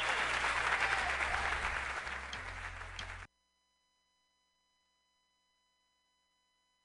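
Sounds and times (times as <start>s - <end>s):
crowd cheering and clapping: 0.0s - 3.3s.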